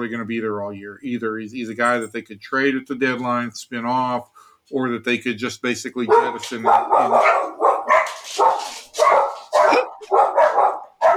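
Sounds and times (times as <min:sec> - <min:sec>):
speech: 0:00.0 - 0:07.6
dogs barking: 0:06.0 - 0:11.1.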